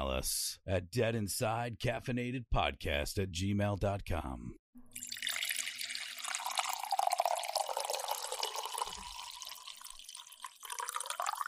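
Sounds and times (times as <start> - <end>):
speech: 0.2 - 5.1
coffee being poured into a cup: 4.9 - 11.4.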